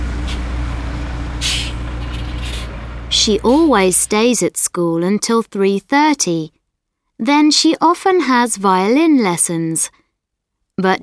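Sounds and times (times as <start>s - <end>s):
bus air brakes hissing: 0.0s - 4.2s
large bus engine idling with deep rumble: 0.0s - 4.4s
speech: 3.2s - 6.6s, 7.2s - 10.0s, 10.8s - 11.0s.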